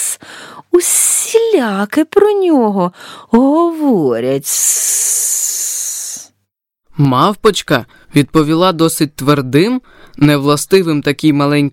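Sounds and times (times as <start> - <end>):
speech: 0.8 - 5.1, 7.0 - 11.7
snake-like hiss: 4.6 - 6.3.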